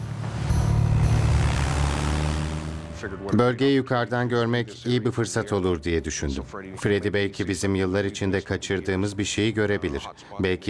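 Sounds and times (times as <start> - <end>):
propeller aircraft engine droning before takeoff: 0.0 - 3.3
speech: 3.0 - 10.6.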